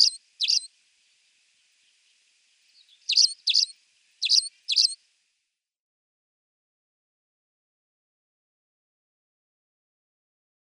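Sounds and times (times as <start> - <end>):
Spanish sparrow singing sharp metallic chirps: 0.0 - 0.7, 2.7 - 5.0.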